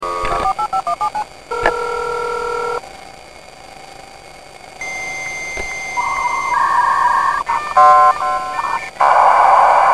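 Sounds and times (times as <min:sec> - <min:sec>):
56k modem dialing up: 0:00.0 - 0:02.8, 0:04.8 - 0:09.9.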